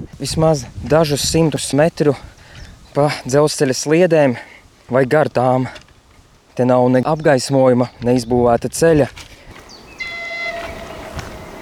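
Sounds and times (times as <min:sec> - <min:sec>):
speech: 0:00.1 - 0:02.3, 0:02.9 - 0:05.8, 0:06.6 - 0:09.3
train horn sounding as the train nears someone walking beside the rails: 0:09.9 - 0:11.5.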